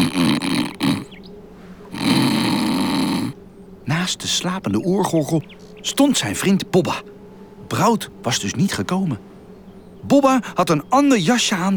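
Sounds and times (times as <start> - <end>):
loud rumbling raspy snoring: 0.0 - 1.2, 1.9 - 3.4
speech: 4.0 - 9.3, 10.0 - 11.7.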